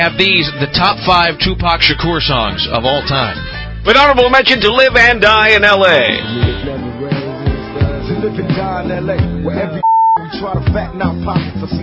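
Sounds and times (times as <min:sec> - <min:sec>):
speech: 0:00.0 - 0:06.7, 0:08.2 - 0:11.8
dense busy music: 0:00.0 - 0:11.8
steady mid-pitched electronic beep: 0:09.8 - 0:10.3.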